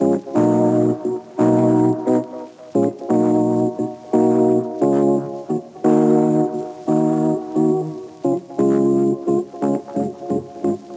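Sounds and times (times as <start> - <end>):
organ melody loop in D sharp minor: 0.0 - 10.9.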